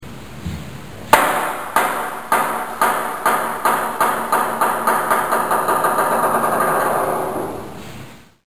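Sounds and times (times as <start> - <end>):
bounce: 1.1 - 7.8.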